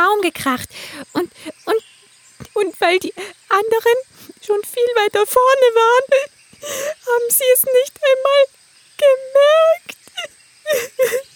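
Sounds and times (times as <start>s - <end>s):
speech: 0.0s - 1.8s, 2.6s - 11.3s
person whimpering and crying: 10.1s - 11.3s.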